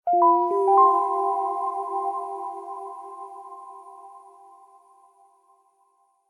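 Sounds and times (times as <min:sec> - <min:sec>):
soft warm relaxing twinkle tone game sound: 0:00.1 - 0:05.0.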